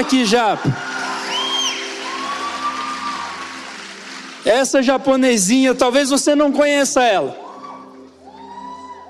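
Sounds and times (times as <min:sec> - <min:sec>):
speech: 0:00.0 - 0:01.0, 0:04.4 - 0:07.4
crowd cheering and shouting: 0:00.0 - 0:04.1, 0:07.2 - 0:09.0
drawn-out whoops and whistle-like cries: 0:01.2 - 0:03.3, 0:07.4 - 0:09.0.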